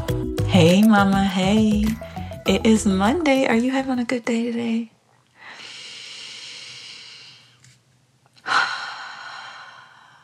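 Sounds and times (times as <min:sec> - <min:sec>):
speech: 0:00.6 - 0:04.9
person taking a slow deep breath: 0:05.4 - 0:07.6, 0:08.4 - 0:10.2.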